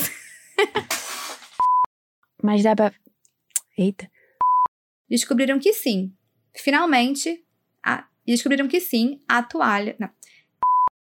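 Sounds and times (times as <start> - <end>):
speech: 2.4 - 3.0, 3.8 - 4.1, 5.1 - 10.3
short electronic telephone beep: 4.4 - 4.7, 10.6 - 10.9.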